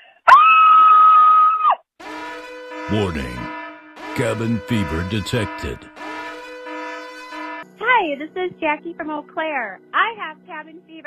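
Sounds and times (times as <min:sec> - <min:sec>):
woman's long high scream: 0:00.3 - 0:01.9
speech: 0:02.9 - 0:03.6, 0:04.2 - 0:05.9, 0:08.1 - 0:11.0.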